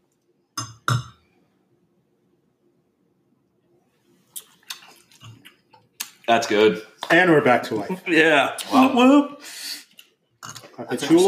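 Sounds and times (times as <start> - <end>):
glasses clinking in a toast: 0.6 - 1.2, 10.4 - 11.2
speech: 6.3 - 9.6, 10.8 - 11.2.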